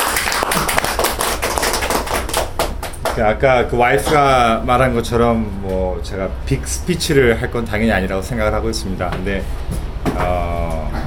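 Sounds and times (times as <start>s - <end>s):
small group at a recovery meeting applauding: 0.0s - 3.2s
speech: 3.2s - 11.0s.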